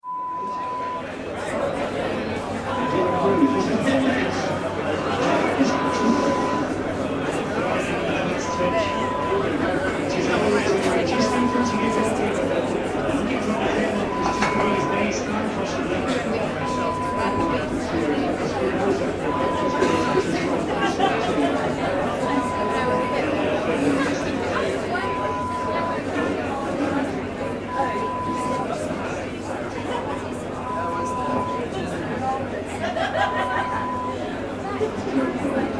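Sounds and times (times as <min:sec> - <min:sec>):
football crowd: 0:00.0 - 0:35.7
laughter: 0:02.7 - 0:28.7, 0:29.6 - 0:35.7.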